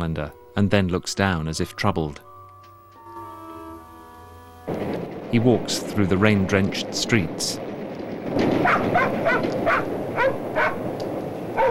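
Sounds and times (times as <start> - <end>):
speech: 0.0 - 2.3, 5.3 - 7.7
Alsatian dog barking and yipping: 8.6 - 10.9.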